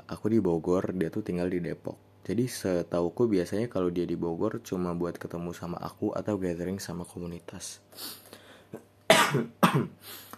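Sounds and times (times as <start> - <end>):
speech: 0.1 - 10.3
harsh coughs: 8.7 - 10.3.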